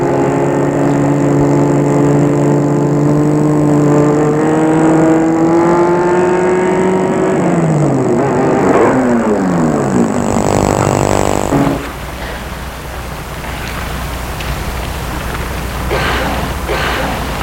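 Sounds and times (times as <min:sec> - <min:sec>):
car engine humming as the car slows and stops: 0:00.0 - 0:17.4.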